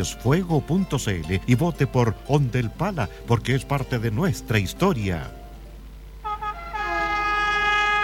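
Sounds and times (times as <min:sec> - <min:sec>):
speech: 0:00.0 - 0:05.4
train horn: 0:06.2 - 0:08.0.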